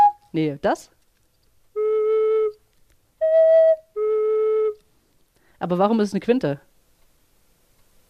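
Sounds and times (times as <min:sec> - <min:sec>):
small pipe blown with a finger half-covering the opening: 0:00.0 - 0:00.3, 0:01.7 - 0:02.6, 0:03.2 - 0:04.9
speech: 0:00.3 - 0:01.0, 0:05.6 - 0:06.7.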